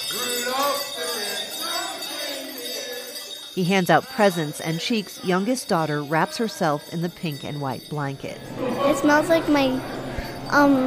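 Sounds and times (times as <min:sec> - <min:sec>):
group of people singing a Christmas song: 0:00.0 - 0:03.5
faint bright jingle: 0:00.0 - 0:10.8
speech: 0:03.6 - 0:10.8.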